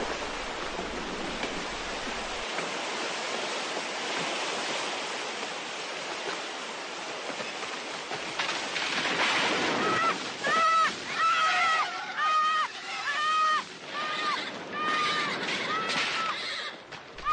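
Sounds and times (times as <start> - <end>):
raging river roaring with churning water: 0.0 - 17.3
horse whinnying while falling with its rider into a river: 11.2 - 17.3.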